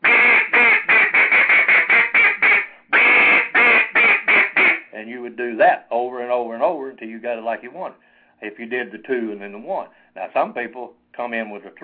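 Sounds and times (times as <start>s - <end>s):
duck call blowing raspy quacks: 0.0s - 4.9s
speech: 5.5s - 11.8s.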